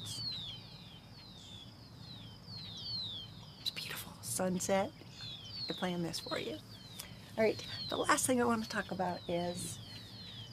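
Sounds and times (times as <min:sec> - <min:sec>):
several birds singing outdoors with high thin whistles: 0:00.0 - 0:10.5
speech: 0:04.4 - 0:05.0, 0:05.7 - 0:06.7, 0:07.4 - 0:09.8.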